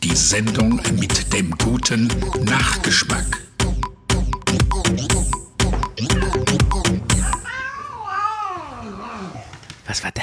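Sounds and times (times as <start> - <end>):
rhythmic percussive hits: 0.0 - 7.5
speech: 0.1 - 3.8, 9.9 - 10.2
tomcat with claw stuck in a sofa meowing: 6.0 - 9.7.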